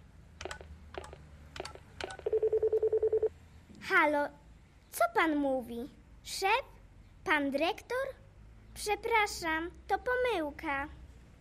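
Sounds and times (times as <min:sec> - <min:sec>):
mobile phone electronic key beeps: 0:02.0 - 0:03.3
speech: 0:03.9 - 0:08.2, 0:08.8 - 0:11.3.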